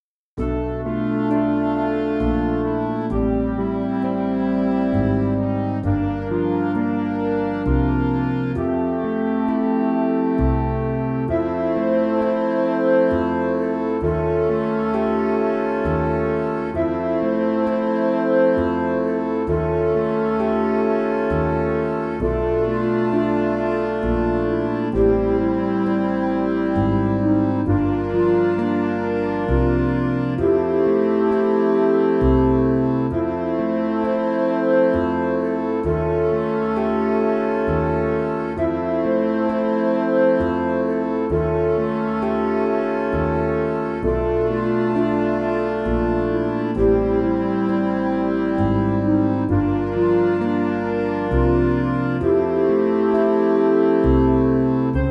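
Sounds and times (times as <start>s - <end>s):
jazz combo playing: 0.4s - 55.1s.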